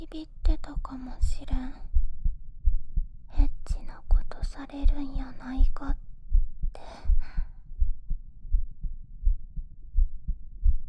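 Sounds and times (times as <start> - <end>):
deep heartbeat thumping: 0.0 - 10.8
faint low rumble: 0.0 - 10.8
speech: 0.1 - 1.9, 4.4 - 6.0.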